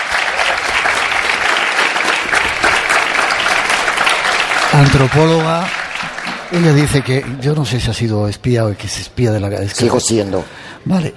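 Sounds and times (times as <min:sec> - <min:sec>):
audience applauding: 0:00.0 - 0:07.8
speech: 0:04.8 - 0:05.8, 0:06.5 - 0:11.1.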